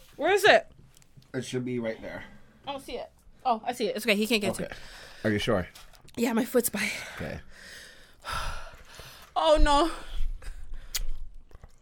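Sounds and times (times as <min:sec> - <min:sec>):
speech: 0:00.2 - 0:00.7, 0:01.3 - 0:08.6, 0:09.4 - 0:10.1
wet mouth sounds: 0:10.8 - 0:11.7
chewing a crisp hot pepper: 0:11.0 - 0:11.7.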